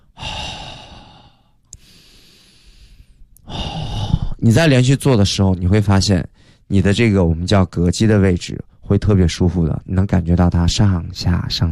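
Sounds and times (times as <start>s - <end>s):
loud rushing inhale during a breathing exercise: 0.0s - 4.4s
speech: 4.4s - 11.7s.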